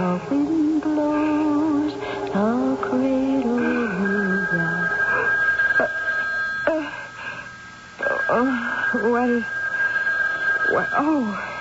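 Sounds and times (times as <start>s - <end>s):
howl-like vocal sounds: 0.0s - 5.3s
telephone ringing: 0.0s - 11.5s.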